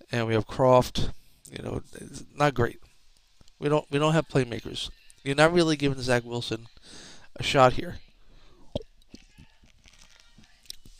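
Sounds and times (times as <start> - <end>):
speech: 0.1 - 2.9, 3.6 - 8.0
person sipping beer: 8.4 - 10.9.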